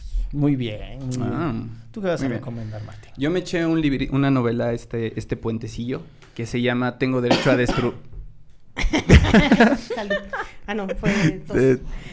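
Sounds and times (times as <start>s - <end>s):
speech: 0.3s - 8.1s, 8.8s - 12.1s
short sharp cough: 7.3s - 8.0s
laughter: 8.8s - 11.6s.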